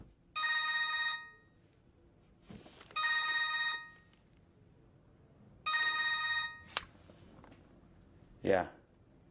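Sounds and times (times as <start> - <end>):
telephone ringing in long electronic bursts: 0.4 - 1.5, 3.0 - 4.1, 5.7 - 6.7
speech: 8.4 - 8.8.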